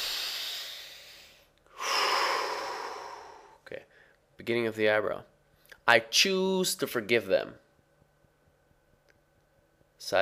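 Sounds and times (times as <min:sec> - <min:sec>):
person taking a breath: 0:00.0 - 0:04.2
speech: 0:03.7 - 0:05.3, 0:05.9 - 0:07.6, 0:10.0 - 0:10.2.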